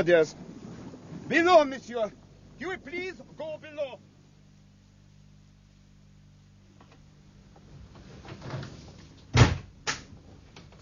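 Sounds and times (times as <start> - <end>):
speech: 0.0 - 0.5, 1.3 - 4.1
heavy door of two solid wooden slabs in the after bulkhead closing: 8.2 - 9.7.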